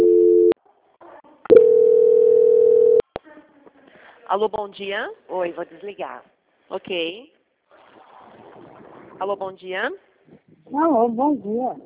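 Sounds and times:
telephone line tone during a call transfer: 0.0 - 0.6, 1.5 - 3.0
speech: 4.3 - 7.4, 9.2 - 11.8.

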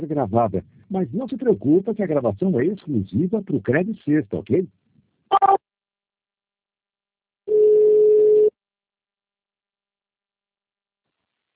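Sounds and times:
speech: 0.1 - 5.7
telephone line tone as a call is transferred: 5.3 - 5.6, 7.5 - 8.5.

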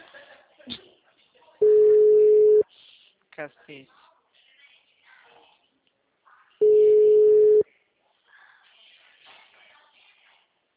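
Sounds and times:
telephone tone during an outgoing call: 1.6 - 2.6, 6.6 - 7.6
speech: 3.4 - 4.1.

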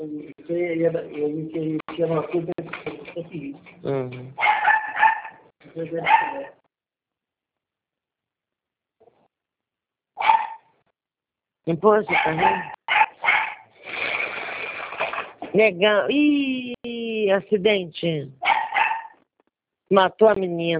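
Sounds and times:
speech: 0.0 - 4.8, 5.8 - 6.5, 11.7 - 12.8, 15.6 - 18.4, 19.9 - 20.7
dog barking: 4.4 - 6.6, 10.2 - 10.7, 12.1 - 13.7, 18.4 - 19.2.

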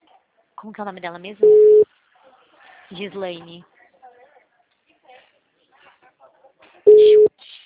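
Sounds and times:
speech: 0.6 - 1.8, 2.9 - 3.7
telephone ringback tone while placing a call: 1.4 - 1.8, 6.9 - 7.3.

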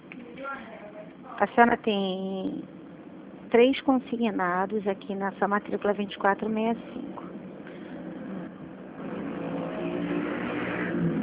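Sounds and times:
speech: 0.5 - 2.8, 3.5 - 7.2
steady traffic roar from a street below: 6.1 - 11.2
cars speeding past on street below: 7.9 - 11.2.

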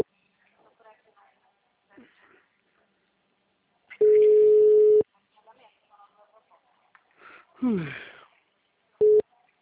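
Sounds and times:
faint quiet speech: 0.2 - 4.2, 5.0 - 9.5
telephone ringback tone while a call is placed: 4.0 - 5.0.

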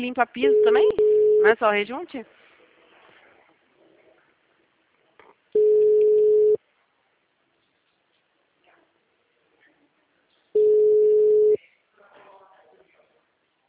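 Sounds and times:
speech: 0.0 - 2.4
ringback tone of an unanswered phone call: 0.4 - 1.5, 5.6 - 6.6, 10.6 - 11.6.

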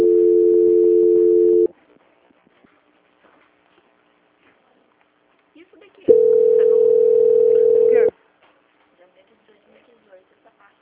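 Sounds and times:
telephone line tone while a call is being transferred: 0.0 - 1.7, 6.1 - 8.1.

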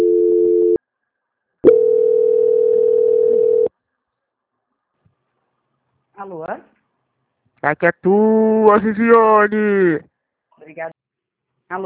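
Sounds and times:
telephone line tone during a call transfer: 0.0 - 0.8, 1.7 - 3.7
speech: 7.6 - 10.9.

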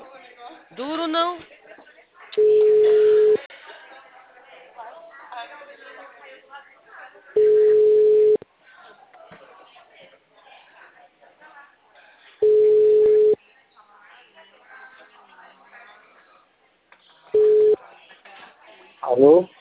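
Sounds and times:
quiet talk: 0.0 - 19.5
speech: 0.8 - 1.5
telephone busy signal after a dropped call: 2.4 - 3.4, 7.4 - 8.4, 12.4 - 13.4, 17.4 - 17.8.

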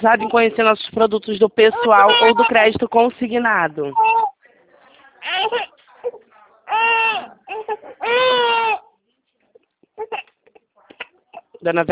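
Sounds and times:
speech: 0.0 - 4.3, 5.2 - 8.8, 11.6 - 11.9
baby crying during bath: 1.6 - 2.7, 3.9 - 4.4, 5.2 - 8.9, 10.0 - 10.3
baby whimpering and sniffling: 1.6 - 2.7, 3.9 - 4.4, 5.2 - 8.9, 10.0 - 11.6.

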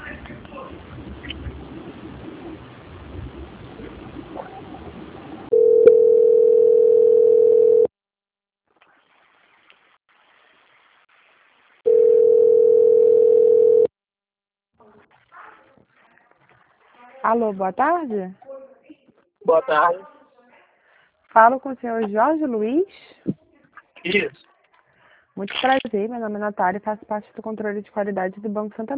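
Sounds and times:
telephone line tones during a call transfer: 5.5 - 7.9, 11.9 - 13.9
speech: 17.3 - 18.4, 19.5 - 20.1, 21.3 - 23.4, 24.0 - 24.4, 25.4 - 28.9.

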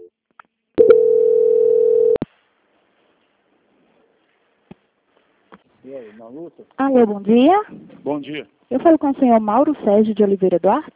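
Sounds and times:
telephone call transfer tone: 0.8 - 2.2
speech: 5.9 - 10.9.

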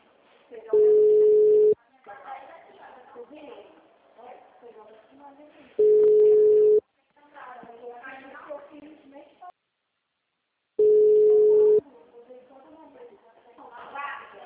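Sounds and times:
people talking: 0.5 - 9.6, 10.8 - 14.4
unanswered telephone call ring tones: 0.8 - 1.8, 5.8 - 6.8, 10.8 - 11.8.

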